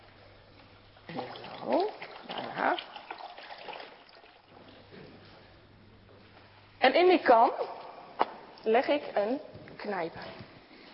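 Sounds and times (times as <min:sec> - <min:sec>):
water pouring into a bowl: 0:00.0 - 0:05.0
speech: 0:01.1 - 0:02.0, 0:02.6 - 0:02.9, 0:06.8 - 0:07.8, 0:08.6 - 0:10.4.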